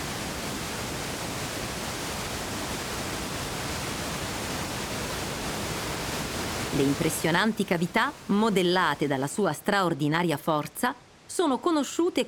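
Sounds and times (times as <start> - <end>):
powerful river water rushing: 0.0 - 9.3
speech: 6.8 - 12.2.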